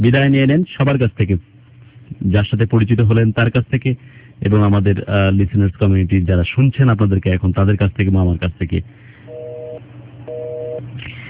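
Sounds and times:
speech: 0:00.0 - 0:09.1
busy tone after a phone call disconnects: 0:09.3 - 0:10.8.

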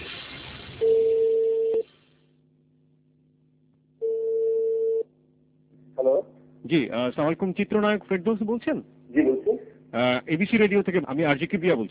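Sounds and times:
telephone ringback tones as a call connects: 0:00.8 - 0:01.8, 0:04.0 - 0:05.0
speech: 0:06.7 - 0:11.8.

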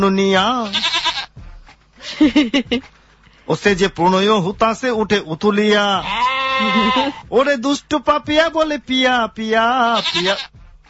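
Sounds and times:
speech: 0:00.0 - 0:01.0, 0:02.2 - 0:10.6
goats bleating: 0:00.5 - 0:01.4, 0:06.0 - 0:07.3, 0:09.7 - 0:10.6
laughter: 0:02.0 - 0:02.9, 0:06.6 - 0:07.2.

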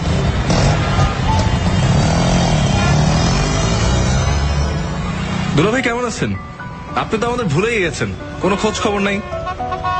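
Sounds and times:
CNG auto-rickshaw engine rumbling while riding through town: 0:00.0 - 0:09.9
speech: 0:05.6 - 0:09.4.

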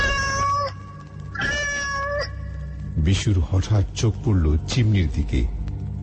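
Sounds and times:
black cat meowing: 0:00.0 - 0:02.6
speech: 0:03.1 - 0:05.6.

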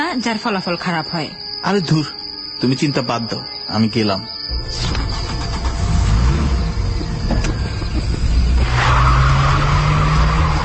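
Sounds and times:
speech: 0:00.1 - 0:04.8
car tyres squealing and skidding at night: 0:03.3 - 0:10.6
car engine roaring at night: 0:04.6 - 0:10.6.

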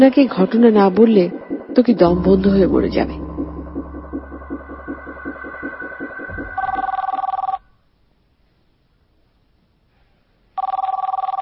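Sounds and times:
speech: 0:00.0 - 0:03.2
rhythmic tonal pattern: 0:00.0 - 0:07.6
telephone ringing in electronic bursts: 0:06.6 - 0:07.6, 0:10.6 - 0:11.4.

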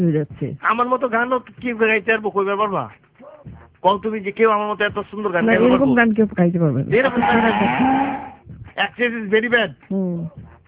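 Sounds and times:
speech: 0:00.0 - 0:08.2, 0:08.8 - 0:10.5
cow mooing: 0:07.1 - 0:08.4.

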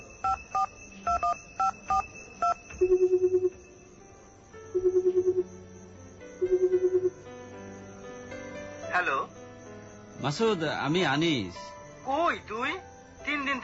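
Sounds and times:
mobile phone keypad tones as a number is dialed: 0:00.0 - 0:03.7, 0:04.7 - 0:05.5, 0:06.4 - 0:07.2
rapidly pulsing phone ringing tone: 0:00.0 - 0:05.6, 0:06.4 - 0:07.3
speech: 0:10.3 - 0:12.9.

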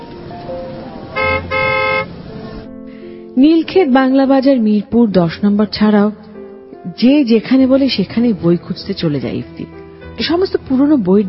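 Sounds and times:
low rumble of vehicle and street noise: 0:00.0 - 0:03.8
car horn honks: 0:01.1 - 0:02.2
speech: 0:03.4 - 0:06.3, 0:06.9 - 0:11.2.

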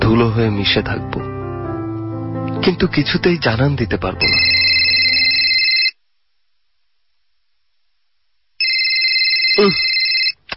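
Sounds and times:
speech: 0:00.1 - 0:01.3, 0:02.6 - 0:04.7, 0:09.6 - 0:10.0
telephone ringing with an incoming call: 0:04.2 - 0:06.0, 0:08.6 - 0:10.4.

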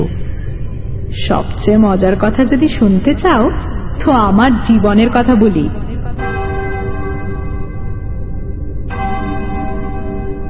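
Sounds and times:
speech: 0:01.2 - 0:05.9
church clock bell striking two: 0:06.1 - 0:10.4.

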